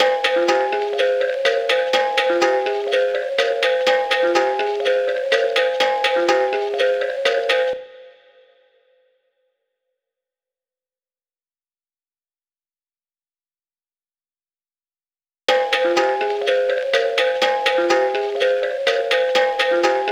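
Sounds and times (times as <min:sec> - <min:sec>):
low kalimba melody loop: 0:00.0 - 0:08.2, 0:15.5 - 0:20.1.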